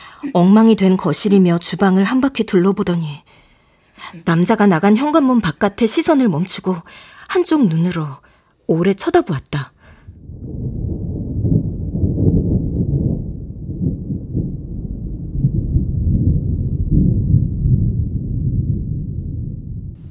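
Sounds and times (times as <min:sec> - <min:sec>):
speech: 0:00.2 - 0:03.4, 0:04.0 - 0:10.8
distant thunder rumbling: 0:09.9 - 0:20.0.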